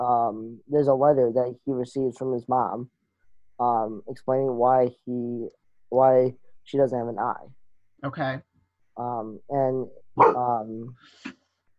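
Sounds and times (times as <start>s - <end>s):
speech: 0.0s - 3.0s, 3.6s - 11.4s
male red-nosed pit bull barking: 10.2s - 10.5s.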